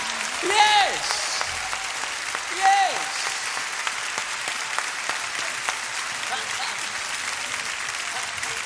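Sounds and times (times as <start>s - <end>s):
audience applauding: 0.0s - 8.6s.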